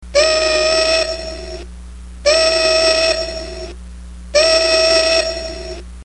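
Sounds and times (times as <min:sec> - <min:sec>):
whistle: 0:00.2 - 0:01.7, 0:02.3 - 0:03.8, 0:04.4 - 0:05.8.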